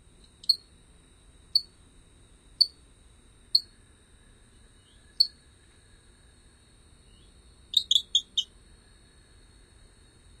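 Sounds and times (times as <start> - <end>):
Rio Grande chirping frog sharp high chirps in North America: 0.4 - 0.6, 3.5 - 3.7, 4.8 - 5.4, 7.1 - 8.5.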